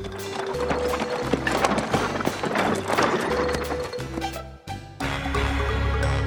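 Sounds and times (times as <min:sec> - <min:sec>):
horse hooves trotting on a road pulling a gypsy caravan: 0:00.0 - 0:04.3
jaunty musical backing: 0:00.0 - 0:06.2.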